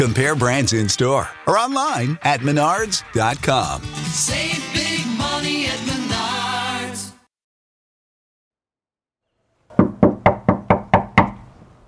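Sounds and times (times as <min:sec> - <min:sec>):
speech: 0:00.0 - 0:06.0
sharp knocks on a door: 0:09.7 - 0:11.4.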